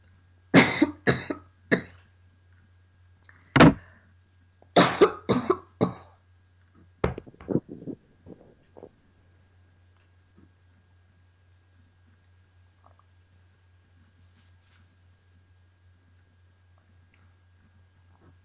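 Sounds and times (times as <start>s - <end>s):
person coughing hard from something caught in the throat: 0.6s - 1.9s, 4.8s - 6.1s.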